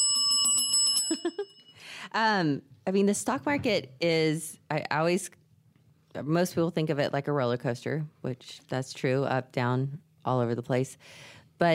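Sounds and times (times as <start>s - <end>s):
small bell ringing: 0.0s - 1.9s
speech: 1.2s - 5.4s, 6.1s - 11.7s.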